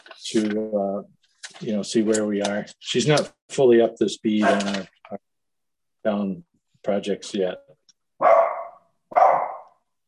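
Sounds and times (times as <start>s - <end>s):
speech: 0.3s - 5.3s, 6.0s - 7.7s
dog barking during an online meeting: 8.2s - 9.8s.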